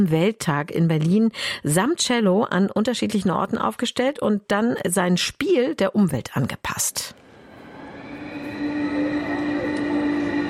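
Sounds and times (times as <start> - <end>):
speech: 0.0 - 7.2
sustained metallic hum of train: 7.1 - 10.4
train rumbling past: 7.1 - 10.4.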